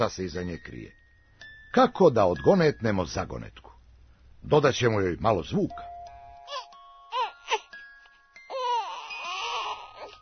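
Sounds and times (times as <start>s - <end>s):
speech: 0.0s - 1.0s, 1.7s - 3.7s, 4.4s - 5.9s
child crying: 8.5s - 10.1s.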